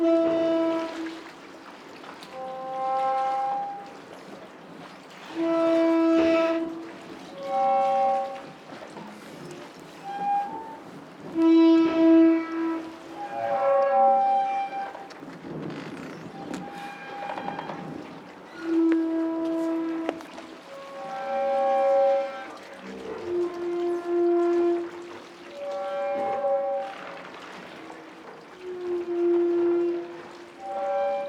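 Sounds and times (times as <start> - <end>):
harbor pier creaking at a boat landing in Shiogama Port, rubbing in waves: 0.0 - 31.2.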